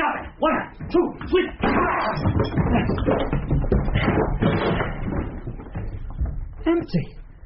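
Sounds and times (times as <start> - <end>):
speech: 0.4 - 5.3, 6.6 - 7.2
clattering debris from broken door: 0.8 - 7.2
barred door being battered and broken down: 0.9 - 6.6.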